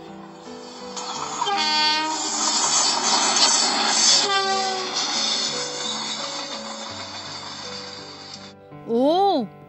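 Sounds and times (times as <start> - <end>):
steam train chugging: 0.1 - 8.6
steam train whistle: 1.4 - 8.4.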